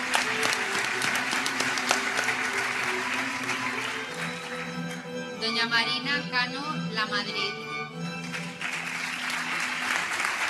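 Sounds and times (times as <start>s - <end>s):
audience applause at award ceremony: 0.0s - 5.1s, 8.2s - 10.4s
speech: 5.4s - 7.7s.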